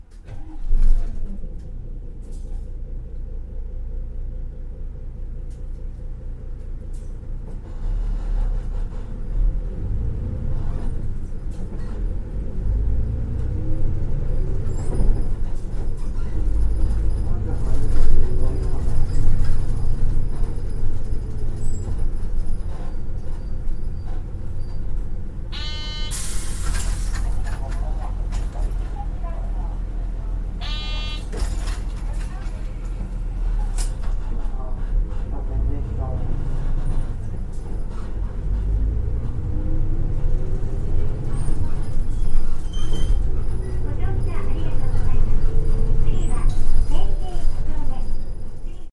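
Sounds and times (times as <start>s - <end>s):
bus interior ambience: 0.0s - 48.9s.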